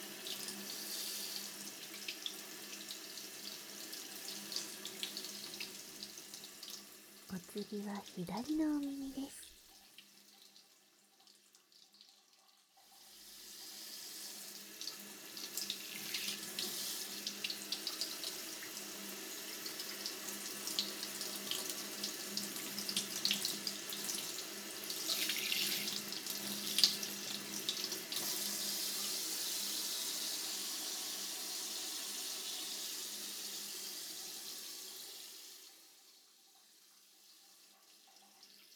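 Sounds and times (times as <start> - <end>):
warm water running from a tap: 0.0 - 38.7
speech: 7.4 - 9.4.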